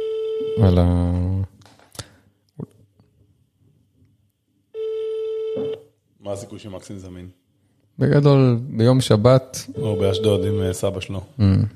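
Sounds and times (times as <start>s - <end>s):
phone ringback tone while placing a call: 0.0s - 0.7s, 4.8s - 5.8s, 9.8s - 10.8s
speech: 0.6s - 1.4s, 6.3s - 7.4s, 8.0s - 11.7s.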